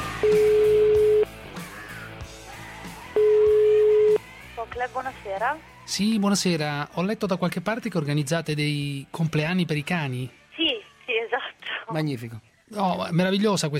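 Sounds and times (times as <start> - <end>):
telephone line ringback tone on a call: 0.2 - 1.3, 3.2 - 4.2
speech: 5.4 - 10.4, 11.9 - 13.7.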